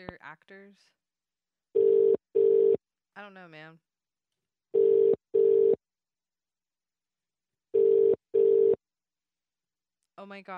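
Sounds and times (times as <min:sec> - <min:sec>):
speech: 0:00.3 - 0:01.0, 0:03.2 - 0:03.9, 0:10.2 - 0:10.5
low-pitched ringback tone of an unanswered telephone call: 0:01.8 - 0:02.8, 0:04.8 - 0:05.8, 0:07.8 - 0:08.8.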